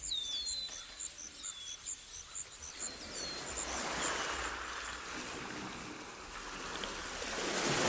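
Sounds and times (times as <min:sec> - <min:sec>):
high chirping calls: 0:00.0 - 0:05.1
waves washing onto a beach where a river flows out: 0:02.7 - 0:07.8.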